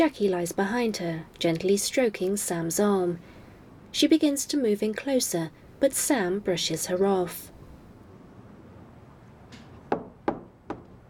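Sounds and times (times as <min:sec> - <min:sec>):
speech: 0:00.0 - 0:07.5
knocking on a bedroom door: 0:09.9 - 0:10.9.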